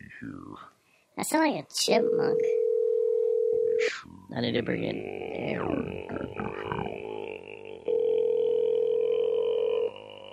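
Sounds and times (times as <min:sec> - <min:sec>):
speech: 0:00.2 - 0:02.6, 0:03.8 - 0:06.7
ringback tone of an outgoing telephone call: 0:02.2 - 0:03.7, 0:07.9 - 0:09.8.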